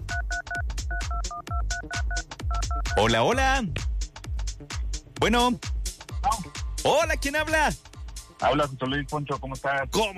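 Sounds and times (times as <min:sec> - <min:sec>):
telephone keypad dialing a number: 0:00.1 - 0:03.0
speech: 0:03.0 - 0:03.9, 0:04.6 - 0:05.7, 0:06.8 - 0:07.8, 0:08.4 - 0:10.1.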